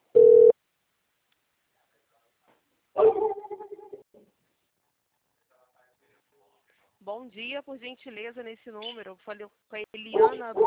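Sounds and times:
dog barking: 3.0s - 3.5s, 10.1s - 10.6s
dog whiny yelping barks: 3.0s - 4.0s, 10.2s - 10.6s
speech: 7.1s - 10.6s.

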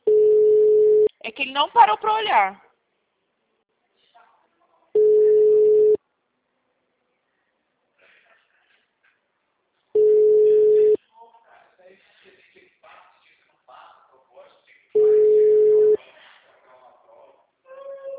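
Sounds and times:
ringback tone of an unanswered telephone call: 0.1s - 1.1s, 5.0s - 6.0s, 10.0s - 11.0s, 15.0s - 16.0s
speech: 1.4s - 2.6s.

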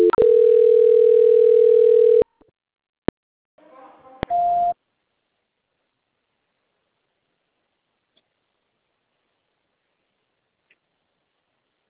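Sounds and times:
steady telephone line tone during a call transfer: 0.0s - 2.3s.

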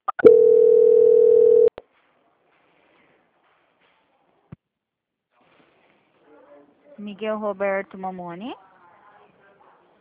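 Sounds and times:
telephone line tone as a call is transferred: 0.2s - 1.7s
speech: 7.1s - 8.7s.

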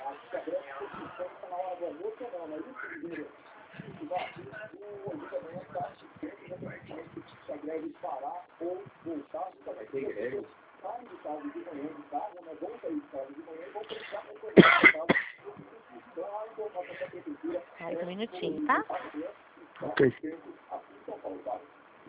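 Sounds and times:
people talking: 0.0s - 22.0s
person coughing: 14.6s - 15.4s.

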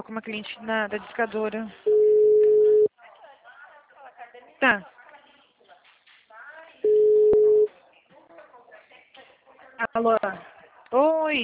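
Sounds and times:
speech: 0.0s - 2.0s, 4.6s - 5.0s, 9.9s - 11.4s
steady telephone tone after a dropped call: 1.9s - 2.9s, 6.8s - 7.7s.

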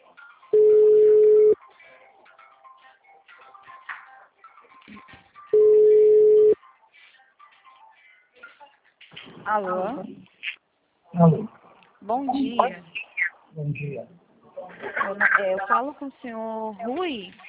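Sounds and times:
ringback tone of an outgoing phone call: 0.6s - 1.6s, 5.5s - 6.6s
speech: 9.5s - 10.3s, 11.2s - 11.5s, 12.1s - 13.0s, 13.6s - 14.2s, 14.8s - 17.4s.

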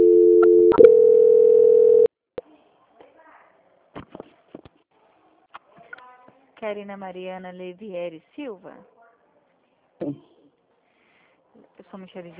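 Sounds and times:
mid-pitched telephone call transfer tone: 0.0s - 2.1s
speech: 6.6s - 9.0s, 11.9s - 12.3s.

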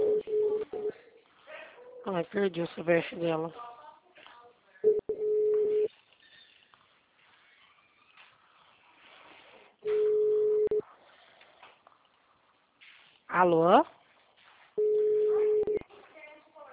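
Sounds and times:
telephone ringback tone while waiting for a call to be answered: 0.0s - 0.9s, 4.8s - 5.9s, 9.8s - 10.8s, 14.8s - 15.8s
speech: 2.1s - 3.7s.

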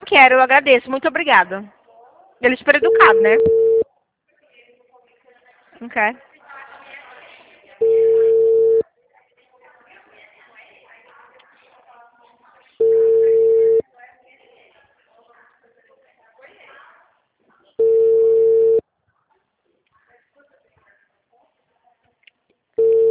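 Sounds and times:
speech: 0.1s - 1.8s, 2.4s - 3.6s, 5.8s - 6.3s
ringback tone of an outgoing telephone call: 2.8s - 3.8s, 7.8s - 8.8s, 12.8s - 13.8s, 17.8s - 18.8s, 22.8s - 23.1s.

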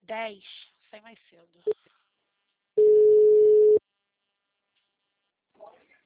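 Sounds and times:
speech: 0.1s - 1.9s
call-waiting tone on a phone line: 2.8s - 3.8s.

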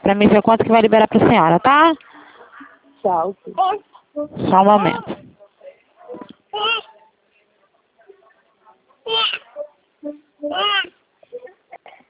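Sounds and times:
speech: 0.1s - 2.1s, 3.0s - 5.2s, 10.0s - 11.5s
baby babbling and cooing: 6.2s - 7.0s, 9.1s - 9.6s, 10.4s - 10.9s
baby high-pitched squealing: 6.6s - 6.9s, 9.1s - 9.5s.

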